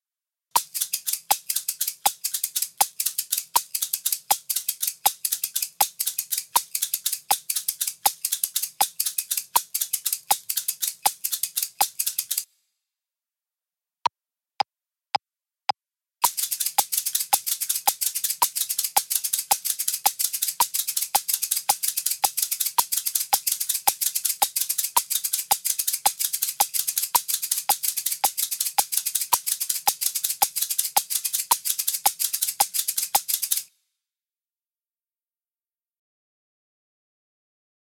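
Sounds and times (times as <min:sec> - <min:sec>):
shakers: 0:00.6 - 0:12.5, 0:16.2 - 0:33.7.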